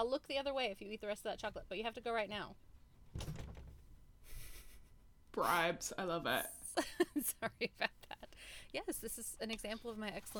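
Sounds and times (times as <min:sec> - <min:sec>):
speech: 0:00.0 - 0:03.4, 0:05.3 - 0:10.3
door pushed shut with a muffled thud and rattle: 0:03.1 - 0:03.9.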